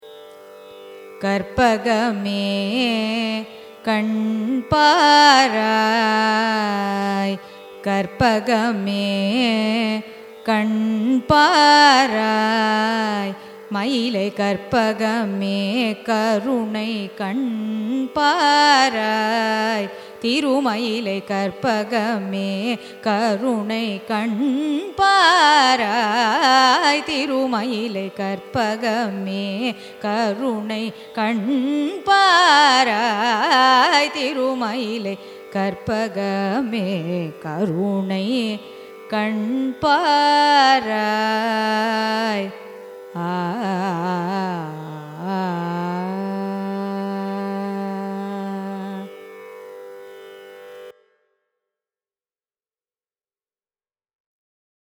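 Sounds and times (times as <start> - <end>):
carnatic raga music: 0.0 - 51.4.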